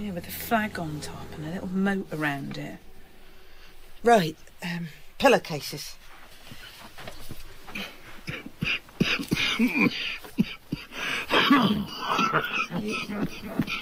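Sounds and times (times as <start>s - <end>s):
speech: 0.0s - 2.9s, 4.0s - 6.1s, 9.6s - 10.6s, 11.5s - 13.8s
coughing: 7.7s - 13.8s
harsh throat clearing: 7.8s - 13.8s.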